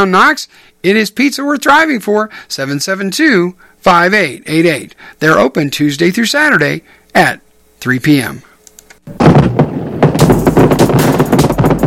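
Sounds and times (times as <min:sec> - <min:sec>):
speech: 0:00.0 - 0:08.5, 0:09.1 - 0:09.4
fireworks and firecrackers exploding: 0:09.1 - 0:11.8.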